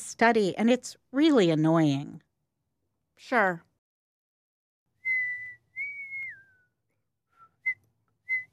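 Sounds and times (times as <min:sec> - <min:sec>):
speech: 0:00.2 - 0:02.3, 0:03.2 - 0:03.7
person whistling a tune: 0:05.0 - 0:08.5.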